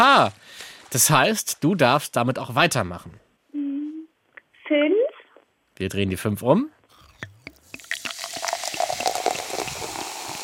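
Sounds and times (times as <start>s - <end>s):
speech: 0.0s - 3.2s, 4.7s - 5.0s, 5.8s - 6.8s
drink being poured into a glass: 7.0s - 10.4s.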